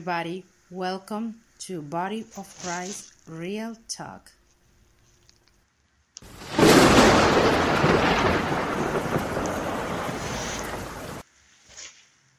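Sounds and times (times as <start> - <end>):
speech: 0.0 - 4.4
loud thunder crack and rumbling boom: 6.2 - 11.2.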